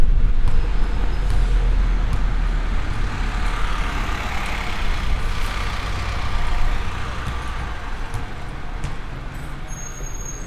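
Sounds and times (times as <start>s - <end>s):
deep engine rumble: 0.0s - 8.9s
dense roar of city street traffic: 0.0s - 10.4s
vehicle passing: 1.3s - 9.1s.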